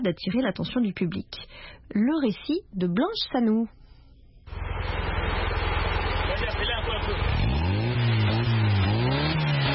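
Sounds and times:
speech: 0.0 - 3.8
small off-road pickup truck engine built from recycled parts running: 4.5 - 9.7.

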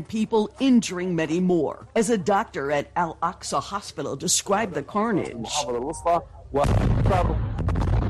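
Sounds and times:
speech: 0.0 - 7.8
airstrike blasts in a Gaza refugee camp: 6.6 - 8.0.

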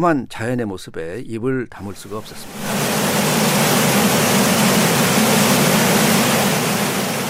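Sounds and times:
speech: 0.0 - 2.9
great waterfall on the Missouri River in northern Montana roaring: 2.0 - 7.2.

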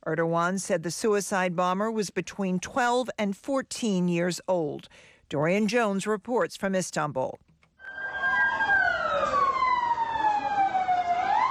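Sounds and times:
speech: 0.0 - 7.5
ambulance siren wailing: 7.8 - 11.4.

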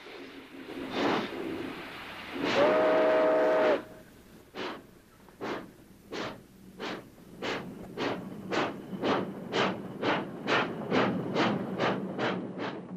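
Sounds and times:
steam locomotive hauling a freight train chuffing: 0.0 - 12.9
steam locomotive whistle: 2.4 - 4.1.

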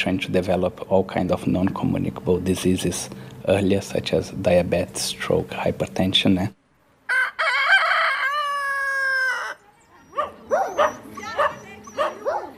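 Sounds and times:
speech: 0.0 - 6.6
rooster crowing: 7.0 - 9.6
stray dogs barking: 10.0 - 12.5.

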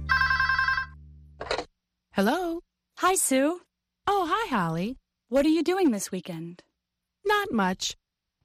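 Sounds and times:
telephone ringing: 0.1 - 1.7
speech: 2.2 - 8.4.

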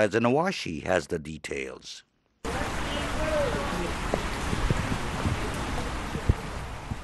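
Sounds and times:
speech: 0.0 - 2.1
steady rain falling with drips and patters: 2.4 - 7.0.

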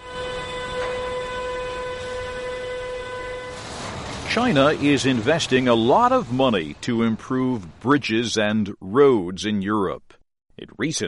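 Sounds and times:
train rolling past on rail tracks: 0.0 - 7.8
speech: 4.4 - 11.0.

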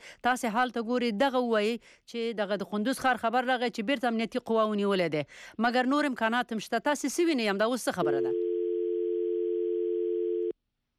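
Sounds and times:
speech: 0.1 - 8.4
telephone dial tone after a phone call was cut off: 8.1 - 10.5.

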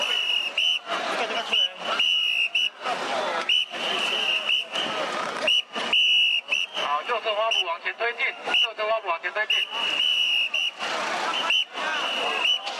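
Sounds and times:
police commander's whistle blasts at Executive Yuan compound in Taiwan: 0.0 - 0.8, 1.5 - 2.8, 3.5 - 7.7, 9.5 - 10.8, 11.4 - 12.7
noisy crowd of students and protesters with voices: 0.0 - 12.7.

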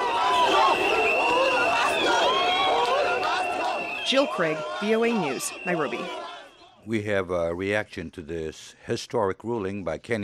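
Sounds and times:
large outdoor crowd of supporters cheering and shouting in the streets: 0.0 - 6.8
whistles: 0.0 - 6.8
speech: 4.1 - 6.2, 6.8 - 10.2.

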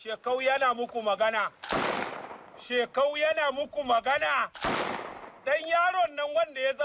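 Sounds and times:
man speaking loudly in a video: 0.0 - 1.6, 2.6 - 4.6, 5.4 - 6.8
gunshots: 1.6 - 2.8, 4.5 - 5.8.

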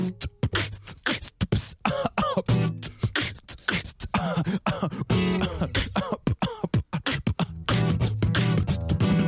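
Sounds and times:
human beatbox mouth percussion: 0.0 - 9.2
coughs and throaty bursts worked into the beat: 1.8 - 8.6.

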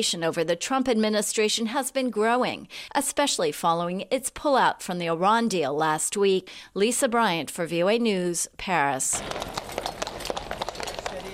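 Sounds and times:
speech: 0.0 - 9.8
hooves of dozens of horses clip-clopping in a royal wedding rehearsal parade: 9.1 - 11.3.

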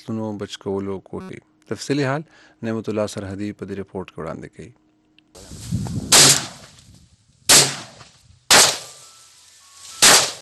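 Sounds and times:
speech: 0.0 - 4.8
low noise: 0.0 - 10.4
gunshots fired by a farmer to drive locusts from crops: 6.1 - 6.7, 7.5 - 9.1, 10.0 - 10.4.

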